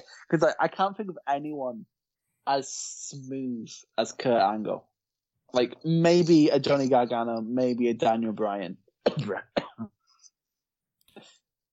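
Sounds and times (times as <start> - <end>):
speech: 0.1 - 4.9, 5.5 - 10.0
short harsh coughs: 9.0 - 10.0
quieter breathy cough-like burst: 9.0 - 10.2.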